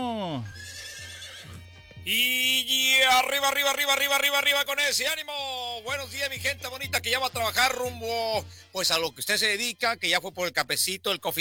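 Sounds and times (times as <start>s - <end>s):
palomino horse neighing: 0.0s - 4.2s
speech: 0.4s - 0.7s, 2.0s - 11.4s.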